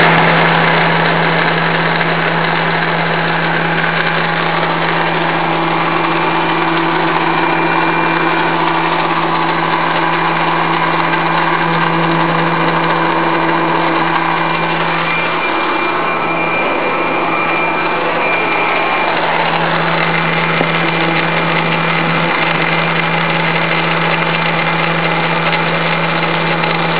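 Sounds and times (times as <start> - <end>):
pump cavitation: 0.0 - 26.9.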